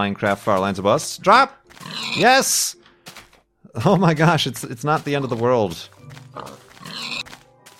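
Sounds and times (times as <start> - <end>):
speech: 0.0 - 2.8, 3.7 - 6.6
nasal video game pig grunts: 1.8 - 2.4, 6.4 - 7.3.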